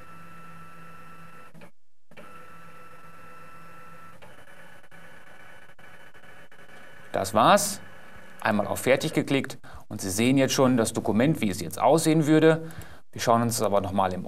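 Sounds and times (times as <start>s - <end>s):
document scanner scanning a document in colour: 0.0s - 9.0s
speech: 7.2s - 7.8s, 8.4s - 14.2s.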